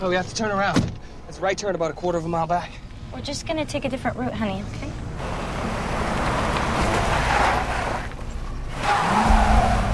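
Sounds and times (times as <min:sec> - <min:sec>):
speech: 0:00.0 - 0:05.4
station wagon engine rumbling and revving: 0:04.8 - 0:09.9
gritty tire noise on a grass verge: 0:05.2 - 0:09.9.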